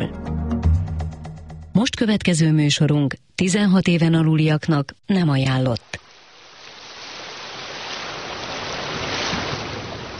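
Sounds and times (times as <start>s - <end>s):
speech: 1.8s - 6.0s
sea waves: 5.8s - 10.1s.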